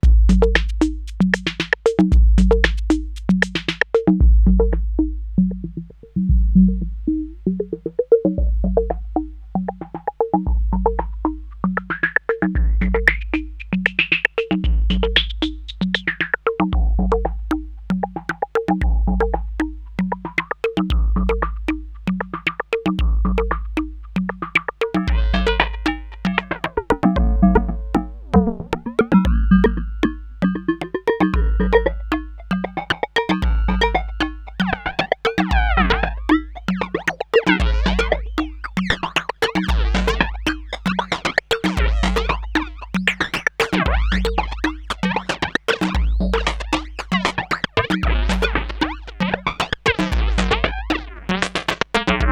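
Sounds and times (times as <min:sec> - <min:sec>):
filter modulated drums: 0:00.0 - 0:52.3.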